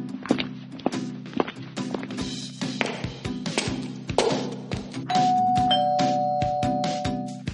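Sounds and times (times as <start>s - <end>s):
footsteps: 0.1s - 4.9s
two-note doorbell chime: 5.1s - 7.4s.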